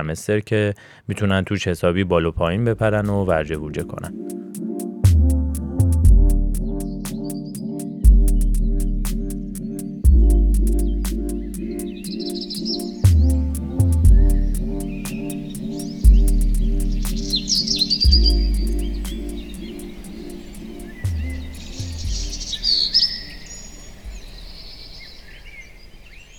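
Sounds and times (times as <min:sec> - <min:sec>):
speech: 0:00.0 - 0:04.7
instrumental music bed with repeating low notes: 0:02.8 - 0:23.4
birds chirping and singing: 0:06.7 - 0:09.0, 0:09.6 - 0:26.3.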